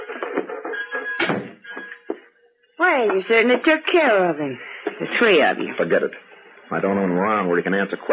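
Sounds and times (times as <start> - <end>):
door being shut with a solid thump: 1.2 - 1.6
steady murmuring background: 2.0 - 8.1
speech: 2.8 - 8.1.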